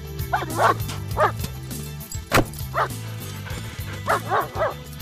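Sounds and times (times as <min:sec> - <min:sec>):
dog barking and yipping: 0:00.3 - 0:01.4, 0:02.6 - 0:04.8.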